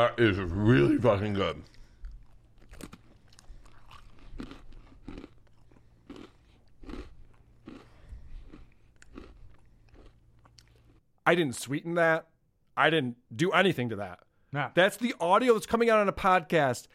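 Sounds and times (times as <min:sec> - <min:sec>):
speech: 0:00.0 - 0:01.8, 0:11.3 - 0:16.9
crisp crunching while chewing a pretzel: 0:02.1 - 0:11.0.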